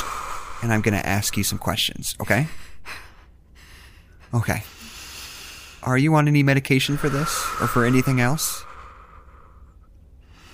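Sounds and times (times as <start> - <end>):
controlled deep breathing: 0.0 - 1.6, 2.4 - 5.8, 6.8 - 10.5
speech: 0.6 - 3.0, 4.3 - 4.8, 5.8 - 8.7.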